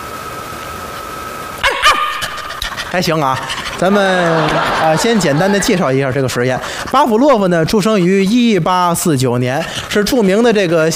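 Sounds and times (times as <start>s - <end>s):
person mimicking high yapping dog barks: 1.6s - 3.6s
laughter: 1.6s - 7.8s
speech: 2.9s - 10.9s.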